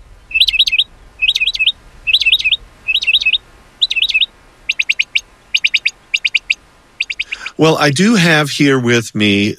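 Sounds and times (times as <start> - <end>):
mockingbird singing: 0.2 - 7.6
speech: 7.6 - 9.5.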